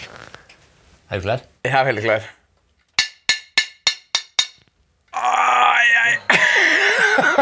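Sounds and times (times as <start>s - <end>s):
speech: 1.1s - 2.4s
frying pan hammering a nail: 3.0s - 4.7s
laughter-like noise: 6.2s - 7.4s.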